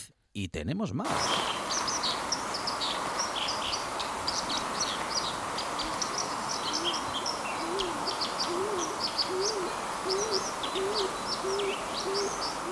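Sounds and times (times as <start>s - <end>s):
speech: 0.4s - 2.0s
high bird chirps: 1.1s - 12.7s
rushing water of a waterfall: 1.1s - 12.7s
Eurasian collared dove cooing: 3.8s - 12.7s.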